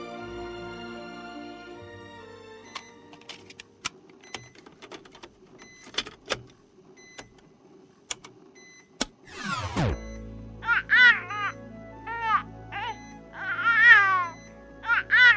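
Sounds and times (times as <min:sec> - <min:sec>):
brief sweeping tone: 0:09.3 - 0:10.6
baby crying: 0:10.6 - 0:15.3.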